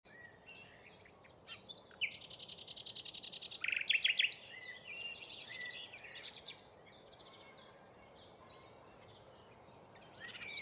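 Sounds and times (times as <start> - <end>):
common nightingale Luscinia megarhynchos singing: 0.1 - 7.7, 10.0 - 10.6.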